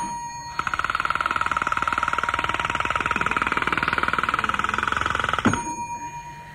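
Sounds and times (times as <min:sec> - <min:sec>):
electric bell ringing as a voting signal: 0:00.0 - 0:03.7, 0:05.0 - 0:06.5.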